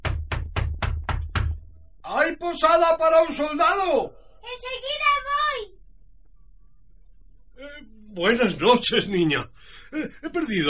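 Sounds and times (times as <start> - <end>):
knocking on a wooden door: 0.0 - 1.6
speech: 2.2 - 5.7, 7.6 - 10.6
laughter: 8.3 - 10.6.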